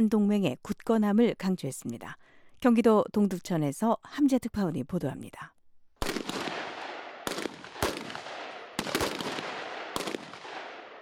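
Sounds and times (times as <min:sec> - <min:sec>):
speech: 0:00.0 - 0:05.5
gunshots at a military range: 0:06.0 - 0:11.0.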